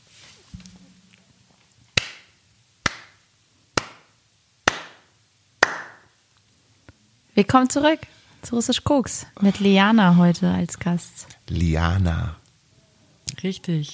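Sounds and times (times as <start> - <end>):
sharp loud hand claps: 2.0 - 3.2, 3.8 - 6.1
speech: 7.4 - 12.4, 13.4 - 13.9.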